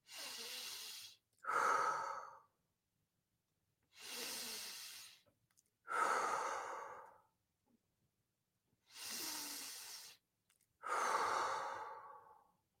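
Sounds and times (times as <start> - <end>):
person breathing in through the nose and out through the mouth: 0.0 - 2.5, 3.9 - 5.3, 5.9 - 7.3, 8.8 - 10.2, 10.8 - 12.6.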